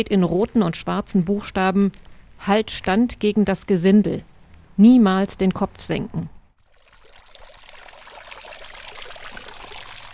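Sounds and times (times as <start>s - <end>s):
speech: 0.0s - 6.4s
water splashing from a fountain in front of a small town hall: 6.6s - 10.1s.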